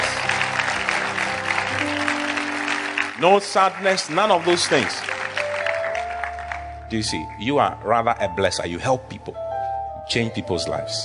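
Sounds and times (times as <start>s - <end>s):
church congregation clapping: 0.0s - 7.0s
speech: 3.2s - 5.1s, 6.9s - 9.4s, 10.1s - 11.0s.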